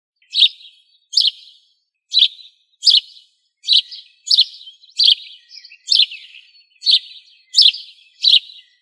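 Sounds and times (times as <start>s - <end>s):
bird song of short bright chirped phrases: 0.2s - 8.8s.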